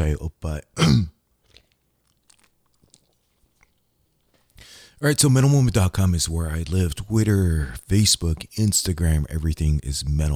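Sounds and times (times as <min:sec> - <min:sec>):
speech: 0:00.0 - 0:01.2, 0:05.0 - 0:10.3
faint wet swallowing clicks: 0:01.3 - 0:05.0
loud slurp of a last sip from a drink: 0:01.4 - 0:05.0
soft breathy exhale: 0:04.4 - 0:05.0.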